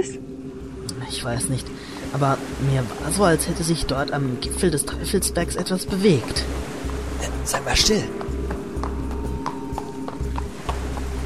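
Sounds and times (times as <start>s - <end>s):
speech: 0.0s - 0.4s, 1.0s - 8.2s
low rumbling hum: 0.0s - 11.2s
horse hooves clip-clopping at a walking pace heard inside a cave through a rock crevice: 8.0s - 11.2s.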